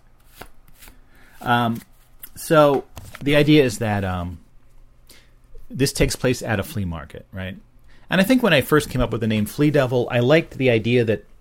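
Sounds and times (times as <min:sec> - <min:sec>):
playing cards being shuffled: 0:00.2 - 0:03.4
speech: 0:01.4 - 0:04.4, 0:05.7 - 0:11.3.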